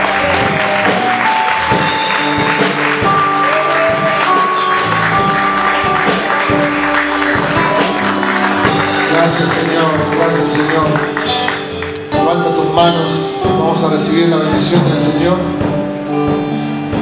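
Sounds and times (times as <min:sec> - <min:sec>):
audience at a church service applauding: 0:00.0 - 0:12.7
sustained musical tones: 0:00.0 - 0:16.9
speech: 0:12.8 - 0:13.2, 0:14.0 - 0:15.8.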